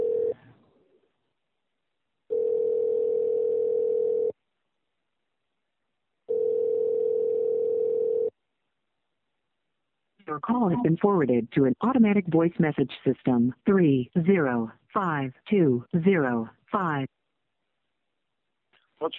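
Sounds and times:
telephone line tone as a phone call is placed: 0:00.0 - 0:00.4, 0:02.3 - 0:04.3, 0:06.3 - 0:08.3
speech: 0:10.4 - 0:17.1, 0:19.0 - 0:19.1.

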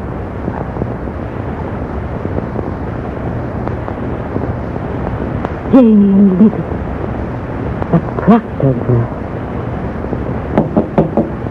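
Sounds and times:
low hum: 0:00.0 - 0:11.4
speech: 0:05.7 - 0:06.8, 0:07.9 - 0:09.2
knocking on a door: 0:10.6 - 0:11.4.

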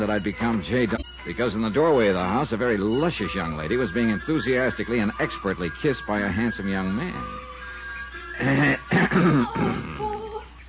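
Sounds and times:
speech: 0:00.0 - 0:07.5, 0:08.4 - 0:10.0
person performing a loud throaty cough: 0:08.4 - 0:10.1.

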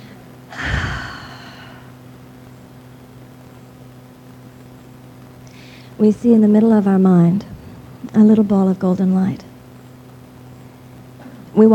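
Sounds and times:
low steady hum: 0:00.0 - 0:11.7
very deep breath drawn during a guided group meditation: 0:00.5 - 0:01.9, 0:05.5 - 0:06.0
speech: 0:06.0 - 0:09.5, 0:11.6 - 0:11.7.

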